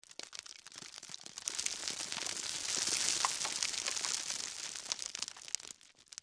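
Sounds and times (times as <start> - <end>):
gravel: 0.0 - 6.2.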